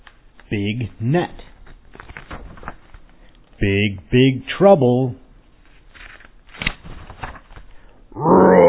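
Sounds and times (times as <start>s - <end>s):
speech: 0.5s - 1.5s, 3.6s - 5.2s
rustling and scuffling: 1.4s - 3.5s, 5.5s - 7.8s
lion roaring: 8.1s - 8.6s.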